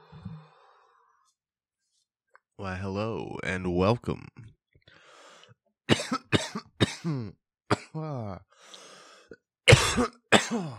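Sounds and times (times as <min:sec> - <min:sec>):
speech: 0:02.6 - 0:04.4, 0:07.0 - 0:08.4, 0:10.0 - 0:10.7
breathy exhale: 0:04.9 - 0:05.5, 0:08.6 - 0:09.3
person coughing into microphone: 0:05.9 - 0:08.0, 0:09.7 - 0:10.7.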